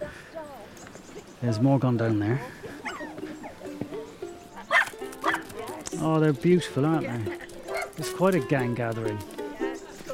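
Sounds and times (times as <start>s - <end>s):
speech: 1.4s - 2.6s, 6.0s - 7.4s, 8.0s - 9.3s
pack of hounds barking and yipping: 2.7s - 5.9s, 7.4s - 8.5s.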